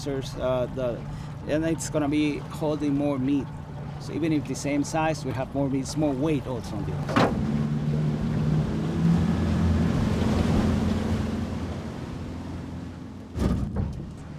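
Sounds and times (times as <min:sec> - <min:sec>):
speech: 0:00.0 - 0:07.5
boat engine droning as the vessel slows: 0:00.0 - 0:14.3
rushing water: 0:00.0 - 0:14.3
wind: 0:00.0 - 0:14.3
splash: 0:06.8 - 0:13.8.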